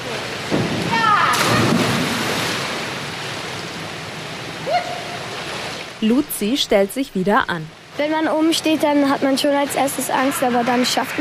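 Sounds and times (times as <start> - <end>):
girl splashing feet first into pool water from a diving board: 0.6 - 2.9
speech: 6.0 - 11.1.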